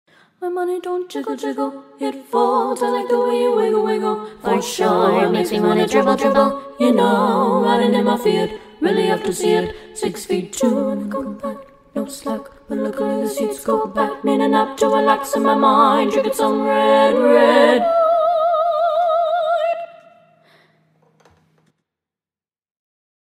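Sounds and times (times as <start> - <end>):
choir singing: 0.4 - 20.2.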